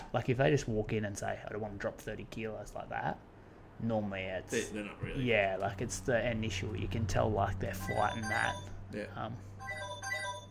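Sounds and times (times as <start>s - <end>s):
steady low hum: 0.0s - 10.4s
speech: 0.1s - 9.8s
mobile phone ringtone with tinkly electronic melody: 7.8s - 8.8s, 9.5s - 10.4s.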